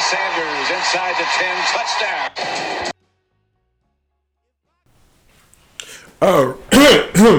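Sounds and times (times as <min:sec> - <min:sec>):
speech: 0:00.1 - 0:02.8
man clearing his throat: 0:05.8 - 0:07.3.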